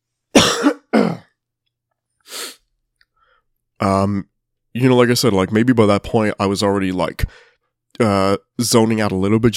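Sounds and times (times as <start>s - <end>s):
person clearing throat: 0.3s - 1.4s
speech: 3.8s - 9.5s.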